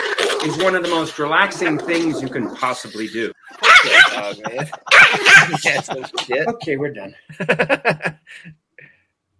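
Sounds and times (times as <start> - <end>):
speech: 0.4 - 8.6
laughter: 3.4 - 8.5
dog barking: 3.6 - 4.3, 4.9 - 5.6.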